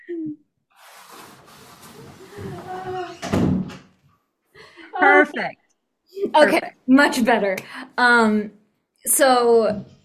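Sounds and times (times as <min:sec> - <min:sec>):
shuffling and handling noise: 0:00.8 - 0:03.2
door pushed shut with a solid thud: 0:03.0 - 0:03.9
speech: 0:05.2 - 0:09.9.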